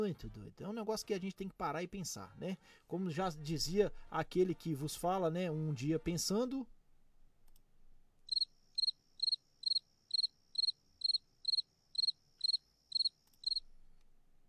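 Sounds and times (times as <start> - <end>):
speech: 0.0 - 6.8
cricket chirping: 8.3 - 13.7.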